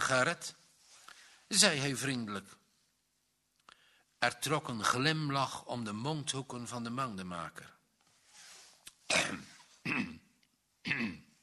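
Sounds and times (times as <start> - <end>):
speech: 0.1 - 0.6, 1.5 - 2.6, 4.2 - 7.8, 9.1 - 10.2, 10.8 - 11.2
man clearing his throat: 9.1 - 11.4.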